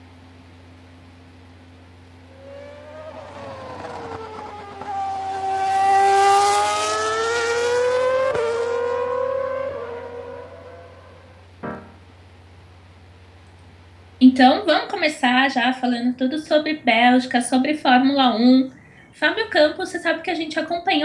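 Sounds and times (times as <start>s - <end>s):
race car engine revving: 1.3s - 12.1s
speech: 14.4s - 21.0s.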